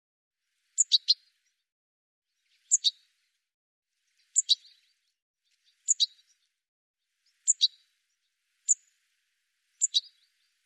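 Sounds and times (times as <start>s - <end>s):
bird giving sharp high chirps: 0.8s - 1.6s, 2.4s - 3.1s, 4.1s - 6.5s, 7.2s - 9.0s, 9.7s - 10.6s.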